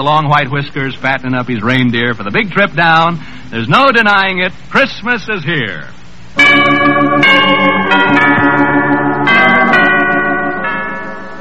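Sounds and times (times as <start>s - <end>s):
speech: 0.0s - 8.6s
bell ringing: 6.4s - 11.3s.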